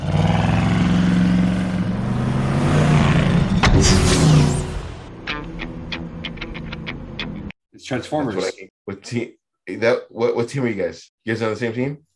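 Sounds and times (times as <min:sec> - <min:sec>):
car engine revving as the car pulls away: 0:00.0 - 0:07.2
speech: 0:07.9 - 0:12.1.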